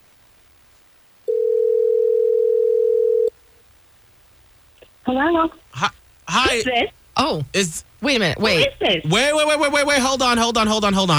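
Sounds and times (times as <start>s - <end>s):
phone dial tone as a call is placed: 1.3s - 3.3s
speech: 5.1s - 11.1s.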